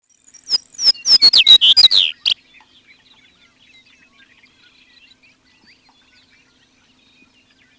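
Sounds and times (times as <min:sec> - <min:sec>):
Chestnut-collared Longspur song of warbled slurred whistles: 0:00.5 - 0:02.4.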